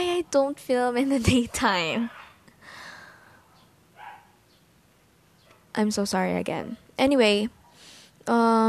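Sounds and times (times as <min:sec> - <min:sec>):
speech: 0:00.2 - 0:02.2, 0:05.8 - 0:07.6, 0:08.2 - 0:08.6
dogs barking: 0:02.0 - 0:02.5, 0:03.4 - 0:04.4, 0:05.4 - 0:05.8.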